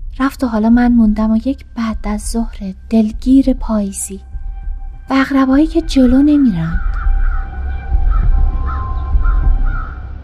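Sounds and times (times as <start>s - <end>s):
speech: 0.2s - 4.3s, 5.1s - 6.9s
crows cawing in front of a hospital: 6.7s - 10.2s.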